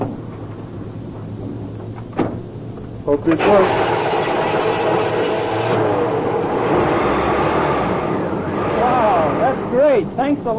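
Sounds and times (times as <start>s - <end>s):
speech: 3.1s - 4.0s, 9.7s - 10.5s
car engine starting after a jump-start: 3.3s - 10.2s.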